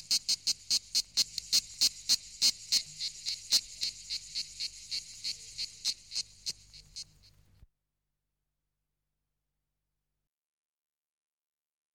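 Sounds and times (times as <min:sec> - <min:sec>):
insect giving high clicky chirps: 0:00.0 - 0:07.4.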